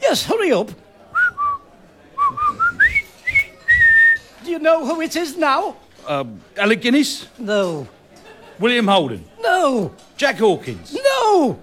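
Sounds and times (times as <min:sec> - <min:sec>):
speech: 0:00.1 - 0:00.9, 0:04.5 - 0:08.0, 0:08.6 - 0:11.6
person whistling a bouncy march tune: 0:02.2 - 0:04.2.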